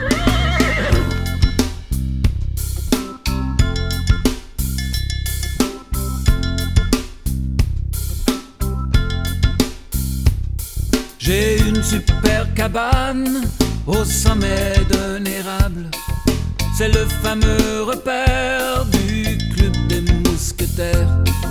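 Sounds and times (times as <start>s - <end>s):
horse whinnying with a shaky wavering call: 0.0s - 1.4s
upbeat music with a steady driving beat: 0.0s - 21.4s
speech: 11.9s - 16.2s, 16.8s - 19.8s, 20.4s - 21.4s.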